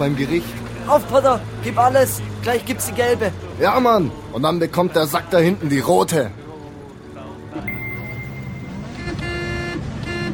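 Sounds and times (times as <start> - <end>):
speech: 0.0 - 6.4
steady traffic rumble: 0.0 - 10.3
car horn honking: 7.7 - 10.3.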